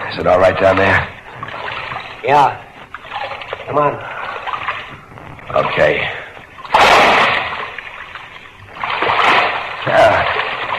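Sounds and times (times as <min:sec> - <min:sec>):
speech: 0:00.1 - 0:01.2, 0:02.2 - 0:02.7, 0:03.7 - 0:04.1, 0:05.5 - 0:06.2
water sloshing and churning: 0:00.2 - 0:10.7
person dropping into waist-deep water in a dark passage: 0:06.7 - 0:07.9, 0:08.8 - 0:10.7.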